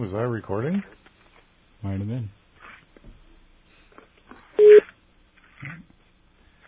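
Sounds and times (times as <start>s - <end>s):
speech: 0.0s - 1.0s, 1.8s - 2.4s
telephone ringing tone while a call connects: 4.6s - 4.8s.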